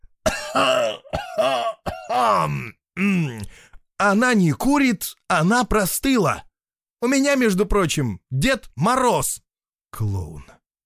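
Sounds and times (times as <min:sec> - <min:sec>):
theatrical drawn-out throat-clearing cough: 0:00.2 - 0:03.2
speech: 0:00.5 - 0:10.6.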